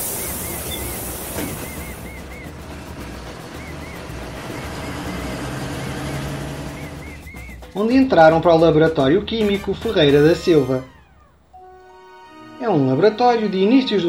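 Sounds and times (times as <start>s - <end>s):
faint high chirping: 0.0s - 7.8s
bus engine rumble: 0.0s - 11.7s
road noise: 0.0s - 12.4s
speech: 1.4s - 1.7s, 7.8s - 11.0s, 12.8s - 14.0s.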